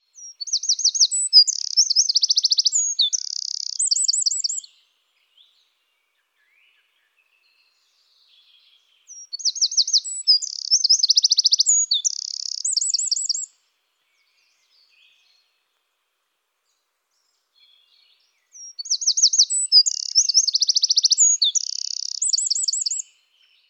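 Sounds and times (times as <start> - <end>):
Troglodytes troglodytes: 0.2 - 4.7, 9.1 - 13.6, 18.6 - 23.2.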